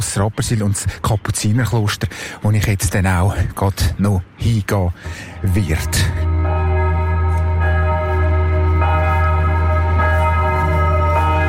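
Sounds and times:
speech: 0.0s - 6.3s
church bells in Rapperswil ringing at eleven o'clock: 5.4s - 11.4s.

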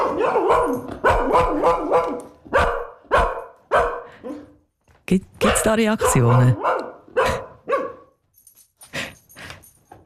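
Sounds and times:
dog barking: 0.0s - 4.6s, 5.4s - 8.2s
speech: 5.1s - 6.7s.

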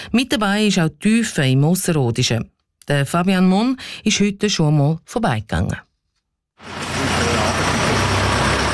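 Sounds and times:
speech: 0.1s - 5.9s
small truck engine rumbling pulling out of a garage in Teufen Switzerland: 6.6s - 8.7s.

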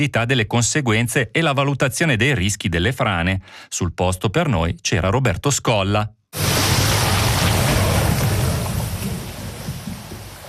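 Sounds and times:
speech: 0.0s - 6.5s
water and sediment pouring down a channel: 6.4s - 10.4s.

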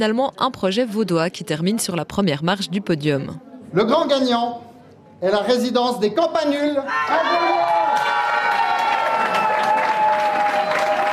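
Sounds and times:
speech: 0.0s - 7.7s
participants cheering a winning team at a competition: 6.9s - 11.1s
participants applauding a winning team at a competition: 7.6s - 11.1s.

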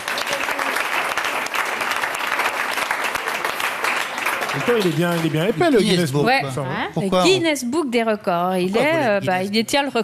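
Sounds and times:
audience applause: 0.0s - 5.8s
speech: 4.6s - 10.0s.

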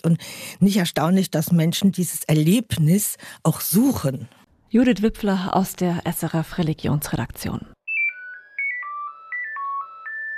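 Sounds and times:
speech: 0.0s - 7.8s
Nokia 9000 Communicator mobile phone ringtone: 7.8s - 10.3s.

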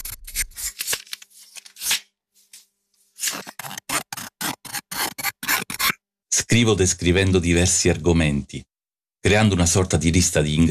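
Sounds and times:
scissors cutting paper: 0.0s - 2.0s, 3.2s - 6.0s
speech: 6.5s - 10.7s.

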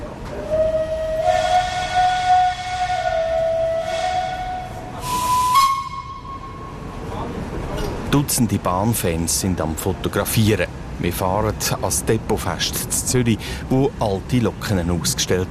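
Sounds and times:
historic train pulling away from Zürich main station: 0.0s - 15.4s
historic train horn at Zürich main station: 0.4s - 7.0s
hissing air from historic train: 3.7s - 5.8s
speech: 8.2s - 15.4s.

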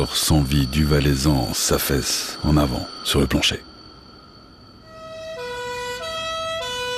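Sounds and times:
speech: 0.0s - 3.7s
two-tone ambulance siren arriving at a barracks entrance: 4.8s - 6.9s.

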